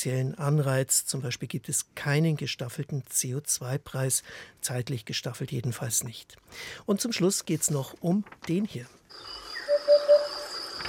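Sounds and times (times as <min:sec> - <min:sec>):
speech: 0:00.0 - 0:09.4
thin hiss of insects: 0:09.1 - 0:10.8
hoopoe Upupa courtship call: 0:09.2 - 0:10.8.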